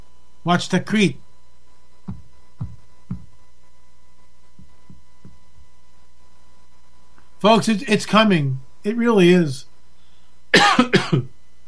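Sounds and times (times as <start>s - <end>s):
speech: 0.4s - 1.2s, 7.4s - 9.7s
forceful coughs with a raspy tail: 10.5s - 11.3s.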